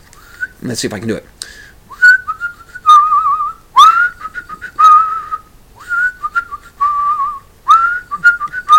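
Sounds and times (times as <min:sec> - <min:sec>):
speech: 0:00.6 - 0:01.7
person whistling a short bouncy tune: 0:01.9 - 0:08.7.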